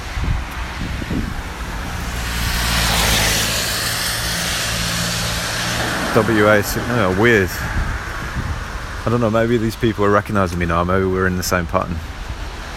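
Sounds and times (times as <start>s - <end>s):
car driving past on a road: 0.0s - 9.0s
speech: 6.1s - 7.8s, 9.0s - 12.1s.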